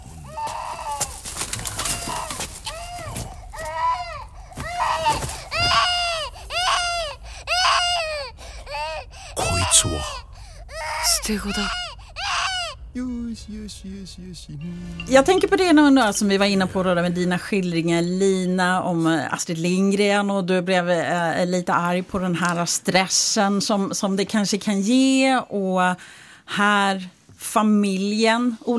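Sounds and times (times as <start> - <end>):
newborn baby crying: 0.2 - 13.0
speech: 11.3 - 11.8, 13.0 - 28.7.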